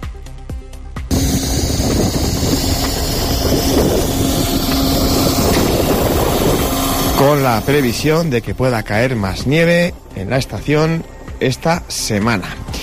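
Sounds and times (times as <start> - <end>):
artificial snow cannons running in mountain wind at a ski station: 1.1 - 11.1
mountain wind at a ski station, minus five degrees: 1.1 - 11.4
faint sustained hum: 1.1 - 12.8
speech: 7.2 - 12.8.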